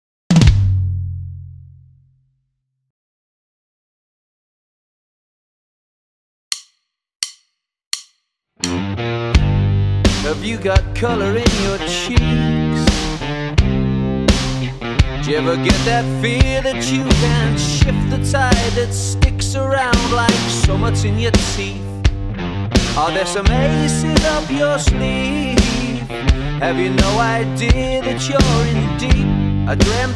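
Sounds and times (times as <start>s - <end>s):
rock pop drums: 0.3s - 0.9s, 8.6s - 30.1s.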